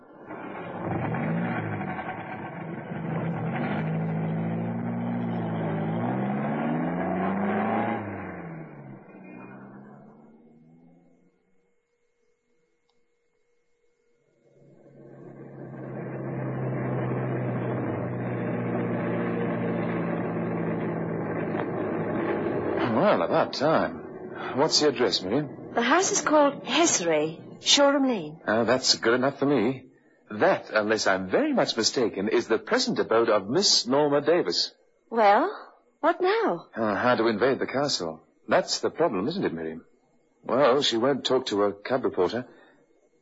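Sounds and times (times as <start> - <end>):
car engine revving and driving: 0.0 - 11.2, 14.5 - 34.7, 36.8 - 39.8
speech: 23.2 - 42.6.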